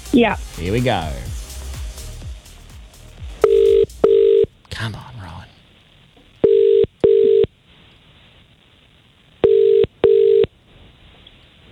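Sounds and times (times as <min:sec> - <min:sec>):
speech: 0:00.1 - 0:01.3, 0:04.8 - 0:05.1
steady electronic telephone ringback tone: 0:03.4 - 0:04.5, 0:06.4 - 0:07.5, 0:09.4 - 0:10.5.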